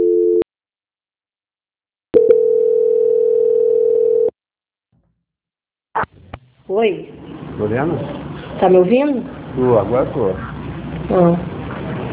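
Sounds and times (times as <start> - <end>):
telephone line tones during a call transfer: 0.0 - 0.4, 2.2 - 4.3
speech: 6.7 - 10.5, 11.1 - 11.5.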